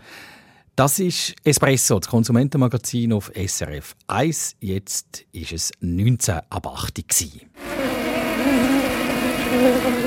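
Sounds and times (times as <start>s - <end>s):
speech: 0.8s - 7.7s, 8.4s - 10.0s
bees buzzing loudly: 7.6s - 10.0s.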